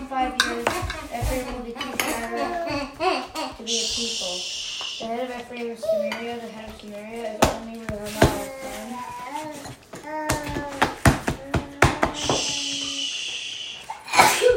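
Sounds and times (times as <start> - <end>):
speech: 0.2 - 10.6
person sneezing: 12.2 - 14.5.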